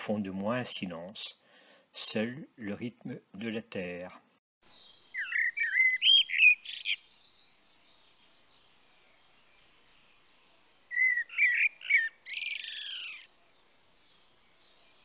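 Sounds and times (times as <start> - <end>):
speech: 0.0 - 1.4, 2.0 - 4.8
faint hiss: 0.0 - 15.0
bird song with bright warbling phrases: 4.6 - 15.0.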